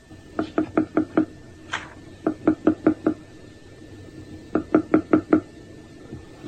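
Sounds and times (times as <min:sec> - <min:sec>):
beetle tapping a rhythm to its own species: 0:00.4 - 0:01.4, 0:02.2 - 0:03.2, 0:04.5 - 0:05.5.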